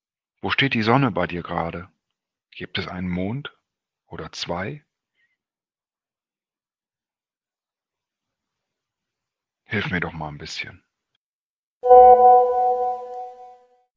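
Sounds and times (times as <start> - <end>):
speech: 0.4 - 1.9, 2.5 - 4.9, 9.7 - 10.8
brief tonal hum: 11.8 - 13.6.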